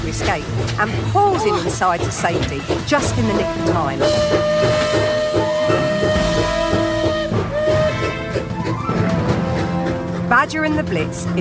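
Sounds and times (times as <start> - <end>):
moving train rumbling: 0.0 - 11.3
speech: 0.1 - 5.2, 10.4 - 11.3
long sustained whistle-like tone: 4.1 - 8.2.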